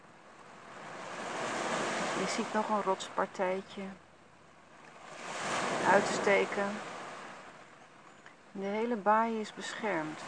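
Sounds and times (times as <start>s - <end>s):
deep rumbling ocean surf: 0.0s - 3.7s, 4.7s - 7.8s
speech: 2.2s - 4.0s, 5.9s - 6.9s, 8.6s - 10.2s.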